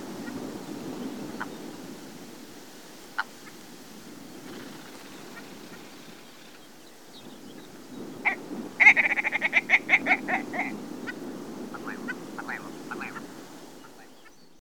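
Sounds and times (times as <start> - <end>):
willow ptarmigan calls: 0.3 - 1.9, 4.3 - 14.6.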